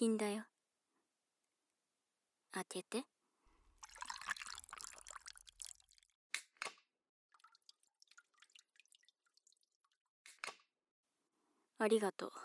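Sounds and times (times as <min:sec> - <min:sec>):
speech: 0:00.0 - 0:00.5, 0:02.5 - 0:03.1, 0:11.8 - 0:12.4
cider bottle pulled from a bucket of ice water: 0:03.8 - 0:06.0
drips from a cider bottle: 0:03.8 - 0:06.1, 0:07.3 - 0:10.0.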